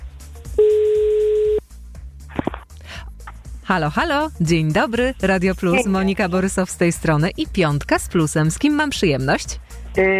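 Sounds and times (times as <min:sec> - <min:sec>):
telephone ringback tone: 0:00.6 - 0:01.6
speech: 0:03.7 - 0:10.1.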